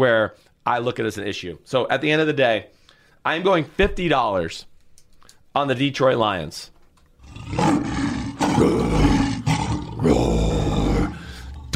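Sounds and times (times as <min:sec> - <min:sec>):
speech: 0:00.0 - 0:04.7, 0:05.5 - 0:06.7, 0:07.3 - 0:08.0, 0:08.6 - 0:09.1, 0:10.0 - 0:10.4
lion roaring: 0:07.2 - 0:11.7.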